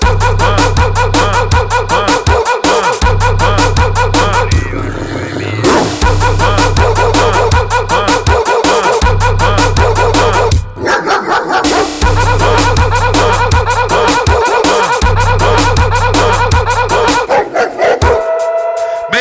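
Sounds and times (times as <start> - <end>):
heavy thumping bass beat: 0.0 - 10.8, 11.6 - 19.1
several dogs barking and howling: 10.8 - 12.0, 14.1 - 15.1, 16.9 - 19.1.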